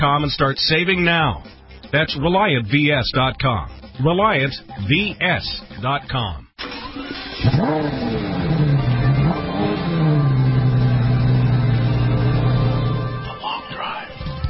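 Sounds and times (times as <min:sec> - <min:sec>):
speech: 0:00.0 - 0:06.4, 0:07.1 - 0:08.6
brand-new Mercedes-Benz E63 AMG sports sedan engine revving: 0:06.6 - 0:13.4.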